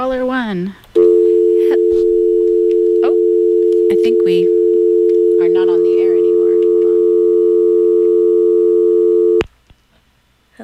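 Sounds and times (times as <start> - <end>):
speech: 0.0 - 0.8, 3.9 - 4.6, 5.4 - 6.0
telephone dial tone on a radio call-in line after a dropped call: 1.0 - 9.4.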